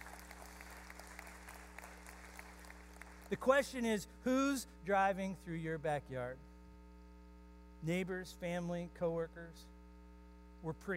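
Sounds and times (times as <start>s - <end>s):
audience applause: 0.0s - 3.4s
low electrical hum: 0.0s - 10.9s
speech: 3.3s - 6.5s, 7.8s - 9.8s, 10.6s - 10.9s.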